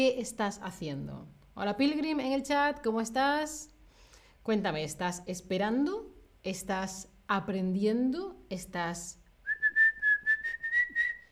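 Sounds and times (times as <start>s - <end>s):
speech: 0.0s - 3.7s, 4.4s - 9.2s
person whistling one steady note: 9.4s - 11.2s.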